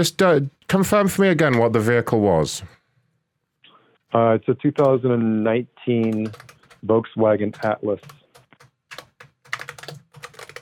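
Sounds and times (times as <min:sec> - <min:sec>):
speech: 0:00.0 - 0:02.8, 0:04.1 - 0:08.2
typing on a computer keyboard while notes are taken: 0:06.0 - 0:06.8, 0:07.5 - 0:10.5.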